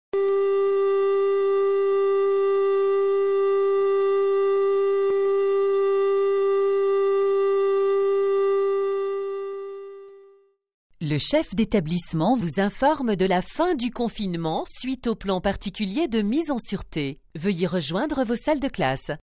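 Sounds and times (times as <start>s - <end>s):
siren signalling the end of a safety drill: 0.2s - 10.5s
voice announcing the end of a safety drill: 11.0s - 19.2s.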